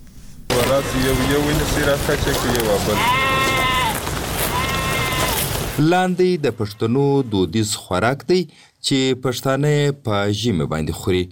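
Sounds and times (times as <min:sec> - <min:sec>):
sheep bleating in a village in the Pishin area: 0:00.6 - 0:05.8
speech: 0:00.8 - 0:03.4, 0:05.8 - 0:11.2.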